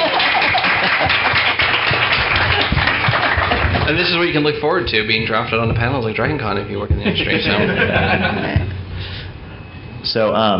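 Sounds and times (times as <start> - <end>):
laughter: 0.0 - 4.3, 6.9 - 8.8
crowd applauding: 0.0 - 4.7
speech: 3.9 - 8.7, 10.1 - 10.5.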